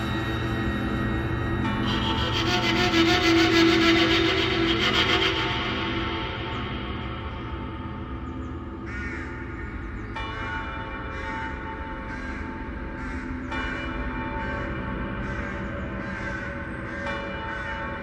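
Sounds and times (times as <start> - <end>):
distant church bells ringing: 0.0 - 18.0
crows cawing: 8.8 - 10.0, 12.1 - 13.9, 15.2 - 17.7.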